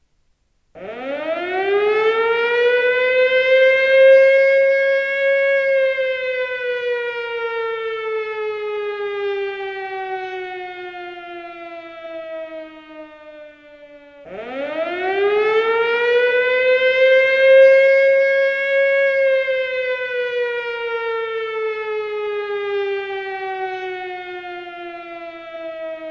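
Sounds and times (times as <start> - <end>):
siren: 0.8 - 26.0.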